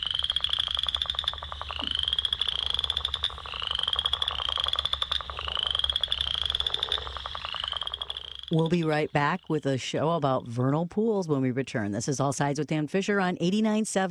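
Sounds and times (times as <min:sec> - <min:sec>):
western chorus frogs calling in a dense chorus: 0:00.0 - 0:10.3
speech: 0:08.5 - 0:14.0.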